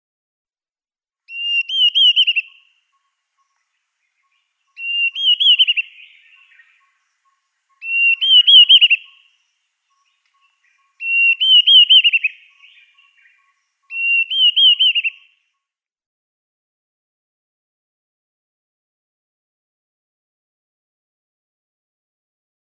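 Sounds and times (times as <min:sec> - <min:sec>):
male Dideric cuckoo display call: 0:01.3 - 0:15.5.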